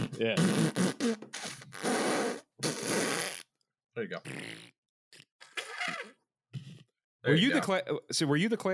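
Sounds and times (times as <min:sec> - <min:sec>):
person blowing a wet raspberry imitating a fart: 0:00.0 - 0:03.5, 0:04.2 - 0:06.9
speech: 0:00.2 - 0:02.0, 0:04.0 - 0:05.2, 0:07.2 - 0:08.7.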